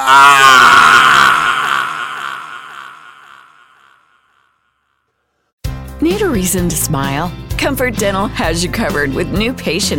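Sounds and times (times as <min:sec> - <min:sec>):
man screaming in pain as a burning torch burns his face: 0:00.0 - 0:03.4
speech: 0:06.3 - 0:09.9.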